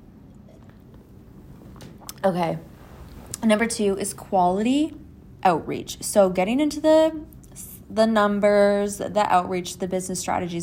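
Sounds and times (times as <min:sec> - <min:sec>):
low steady rumble: 0:00.0 - 0:10.6
person slurping a small sip of tea: 0:00.2 - 0:03.4
speech: 0:02.2 - 0:02.7, 0:03.4 - 0:10.6.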